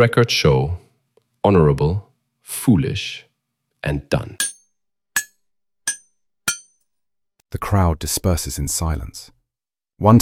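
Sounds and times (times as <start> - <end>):
speech: 0.0 - 0.8, 1.4 - 4.5, 7.5 - 9.4, 10.0 - 10.2
ceremonial hammer striking the glass of a computer terminal: 4.4 - 6.8.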